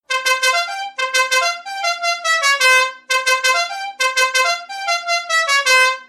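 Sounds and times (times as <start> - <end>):
musical car horn: 0.0 - 6.0.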